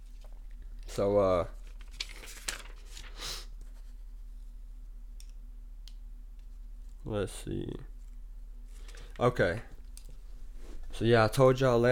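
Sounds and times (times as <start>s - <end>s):
speech: 1.0s - 1.6s, 7.1s - 7.9s, 9.2s - 9.8s, 11.0s - 11.9s
paper rustling and crinkling: 1.5s - 3.9s.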